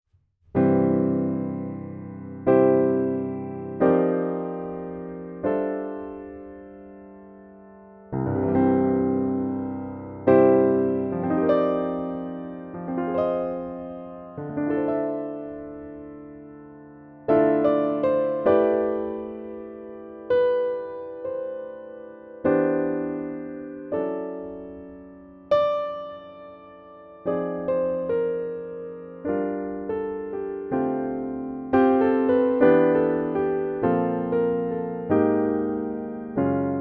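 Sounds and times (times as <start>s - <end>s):
piano playing: 0.5s - 36.8s.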